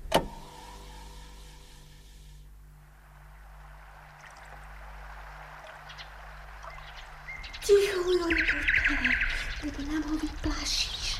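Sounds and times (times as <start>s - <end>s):
low steady hum: 0.0s - 11.1s
nightingale singing: 3.0s - 11.1s.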